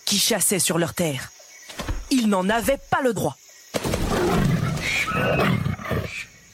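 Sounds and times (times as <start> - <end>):
speech: 0.1 - 1.4, 2.1 - 3.4, 5.1 - 6.1
tiger roaring: 3.8 - 6.3.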